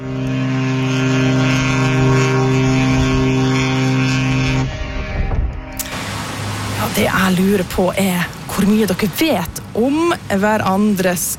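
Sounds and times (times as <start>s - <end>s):
large coastal passenger ship horn blast: 0.0s - 7.8s
large coastal passenger ship engine rumble: 0.0s - 11.3s
wind noise: 1.0s - 9.8s
speech: 7.3s - 11.3s.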